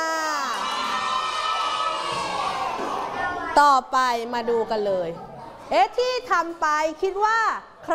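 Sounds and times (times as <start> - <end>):
group of children cheering and shouting: 0.0 - 3.6
speech: 3.6 - 7.9.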